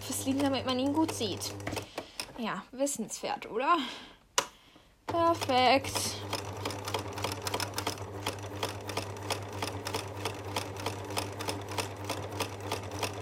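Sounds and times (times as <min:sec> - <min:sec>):
sewing machine stitching a homemade snaffle bridle: 0:00.0 - 0:02.4, 0:05.1 - 0:13.2
speech: 0:00.2 - 0:04.1, 0:05.1 - 0:06.4.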